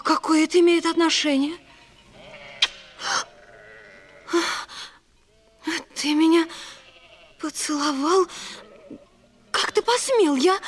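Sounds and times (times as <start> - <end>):
speech: 0.1 - 1.7, 6.0 - 6.6, 7.6 - 9.0, 9.9 - 10.6
sheep bleating while being watered: 0.9 - 4.4, 5.3 - 5.8, 6.6 - 7.5, 8.5 - 9.6.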